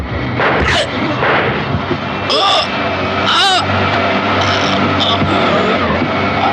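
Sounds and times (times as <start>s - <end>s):
gunshots during a struggle: 0.2s - 2.9s
strained voices and shouting: 0.5s - 6.5s.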